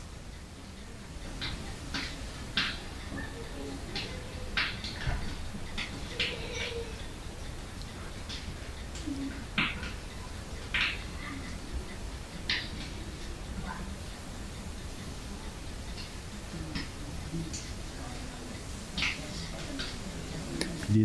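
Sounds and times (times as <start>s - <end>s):
faint murmur of voices: 0.0s - 21.0s
fire crackling with sharp pops and snaps: 0.1s - 21.0s.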